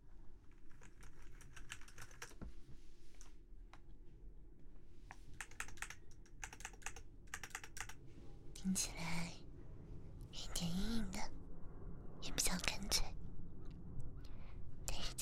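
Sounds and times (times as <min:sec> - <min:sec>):
low steady hum: 0:00.0 - 0:15.1
typing on a computer keyboard: 0:00.5 - 0:02.4, 0:05.4 - 0:08.0
speech: 0:08.7 - 0:09.4.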